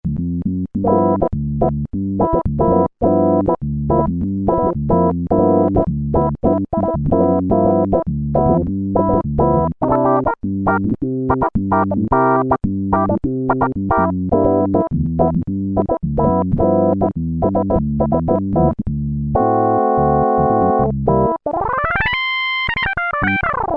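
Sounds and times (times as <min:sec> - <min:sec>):
Roland Juno-106 synthesizer contact wah factory preset: 0:00.8 - 0:18.8, 0:19.4 - 0:23.7.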